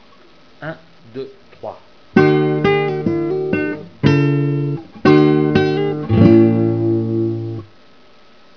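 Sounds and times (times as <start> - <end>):
guitar minuet: 2.1 - 7.7.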